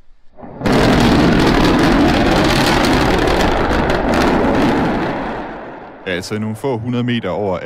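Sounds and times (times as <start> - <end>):
rocket prototype exploding during landing attempt: 0.3 - 6.4
long rumbling explosion roar: 0.4 - 6.3
speech: 6.1 - 7.6.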